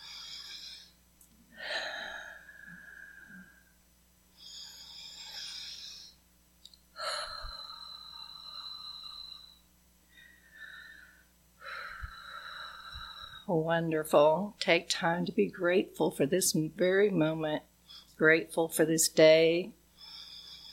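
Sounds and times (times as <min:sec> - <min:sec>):
deep breaths in and out during a guided morning relaxation exercise: 0:00.0 - 0:06.2, 0:07.0 - 0:13.5, 0:19.9 - 0:20.7
speech: 0:13.5 - 0:19.8.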